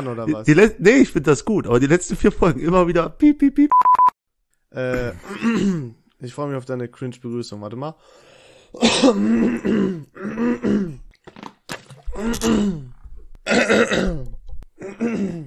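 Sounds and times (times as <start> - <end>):
speech: 0.0 - 4.0, 4.7 - 11.0, 12.2 - 12.9, 13.5 - 15.4
person clearing throat: 4.9 - 6.0, 8.8 - 11.1, 12.1 - 15.4.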